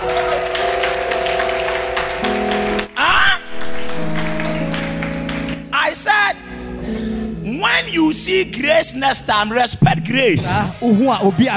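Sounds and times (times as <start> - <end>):
audience clapping: 0.0 - 5.8
sustained musical tones droning: 0.1 - 11.0
speech: 8.0 - 11.5.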